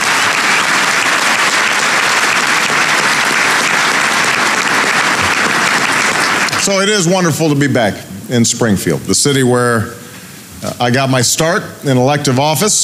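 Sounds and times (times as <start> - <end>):
large audience applauding at a speech in Springfield: 0.0 - 7.1
speech: 6.7 - 10.0, 10.6 - 12.8.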